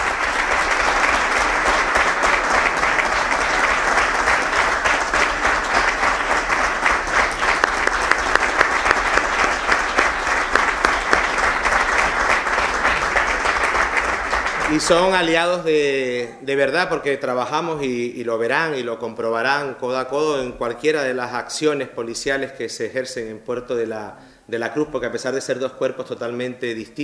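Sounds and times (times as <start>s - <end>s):
audience applause at a formal ceremony honoring a promoted police chief: 0.0s - 16.0s
speech: 14.8s - 27.0s.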